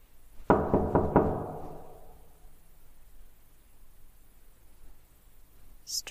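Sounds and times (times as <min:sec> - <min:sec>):
faint hiss: 0:00.0 - 0:06.0
knocking on a wooden door: 0:00.5 - 0:02.2.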